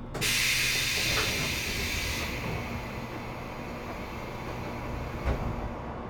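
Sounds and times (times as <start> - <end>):
train doors sliding open with air hiss: 0.2 - 6.0
brief thump: 5.2 - 5.6.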